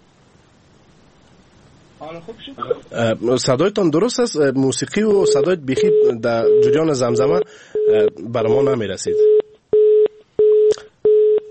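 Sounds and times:
speech: 2.0s - 9.4s
telephone busy tone beeps after a call is cut off: 5.2s - 8.2s, 9.1s - 11.4s.

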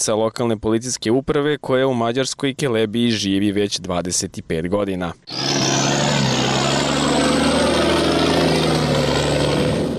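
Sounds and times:
speech: 0.0s - 5.7s
military truck engine droning while driving past: 5.3s - 9.9s.

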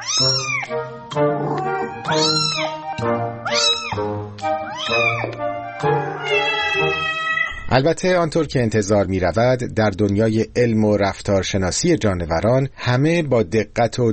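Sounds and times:
cat meowing loudly: 0.0s - 0.8s, 1.4s - 7.7s
speech: 0.2s - 1.3s, 7.8s - 14.1s.

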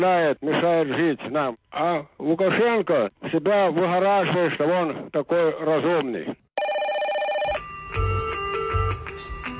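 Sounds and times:
speech: 0.0s - 6.4s
telephone ringing with a bright electronic tone: 6.6s - 9.0s.

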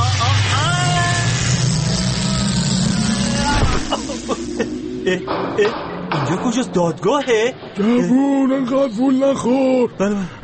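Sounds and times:
time machine travel effect whooshing rumble with wavering sweeping tones: 0.0s - 7.0s
speech: 5.1s - 10.4s.

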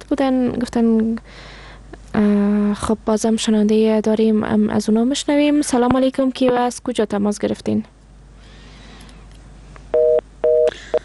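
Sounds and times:
speech: 0.1s - 8.0s
telephone tone after a caller's line disconnects: 10.0s - 11.0s.

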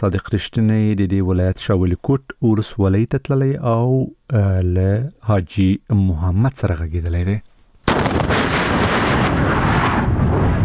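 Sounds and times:
speech: 0.0s - 8.2s
landmine blast set off by police engineers on a highway: 7.9s - 10.6s.

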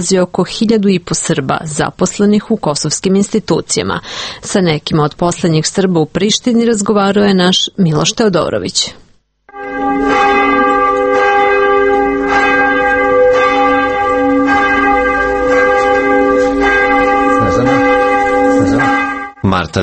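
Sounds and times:
speech: 0.0s - 9.0s, 19.5s - 19.8s
church bells ringing for service: 9.5s - 19.8s.

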